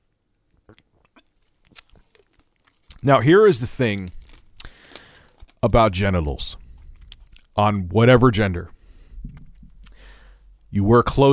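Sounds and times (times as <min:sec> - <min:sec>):
person sipping a drink: 0:00.6 - 0:03.0, 0:03.8 - 0:05.7, 0:06.4 - 0:07.6, 0:08.7 - 0:10.7
swallowing noises: 0:00.6 - 0:07.6, 0:08.7 - 0:10.7
speech: 0:03.0 - 0:04.2, 0:05.6 - 0:06.6, 0:07.6 - 0:08.8, 0:10.7 - 0:11.3.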